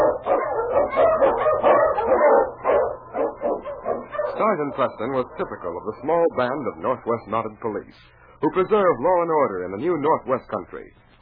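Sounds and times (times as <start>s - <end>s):
husky sled dog barking and yelping: 0.0s - 6.2s
speech: 4.5s - 11.1s.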